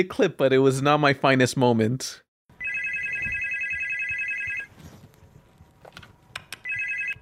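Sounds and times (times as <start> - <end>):
speech: 0.0 - 2.2
telephone ringing in a long electronic trill: 2.6 - 4.7, 6.6 - 7.2.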